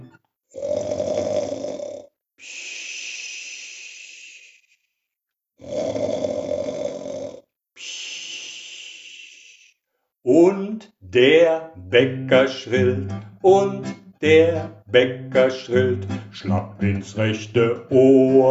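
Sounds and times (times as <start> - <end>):
loud snoring with rattling inhale and whistling exhale: 0.5 - 2.1, 5.6 - 7.5
speech: 10.3 - 18.5.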